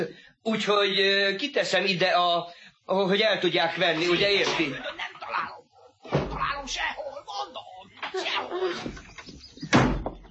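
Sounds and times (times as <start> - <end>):
speech: 0.0 - 9.1
indistinct voices: 3.7 - 9.1
door slamming: 6.0 - 6.8, 8.1 - 10.2.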